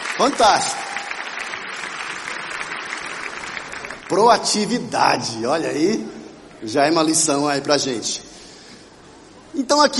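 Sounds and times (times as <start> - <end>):
crowd applauding: 0.0 - 4.8
speech: 0.2 - 0.8, 4.1 - 8.4, 9.5 - 9.9.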